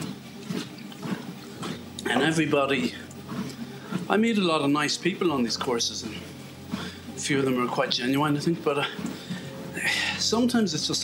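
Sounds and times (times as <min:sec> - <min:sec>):
person drinking a glass of water with swallowing gulps: 0:00.0 - 0:04.1
speech: 0:02.1 - 0:03.0, 0:04.1 - 0:06.3, 0:07.2 - 0:09.1, 0:09.8 - 0:11.0.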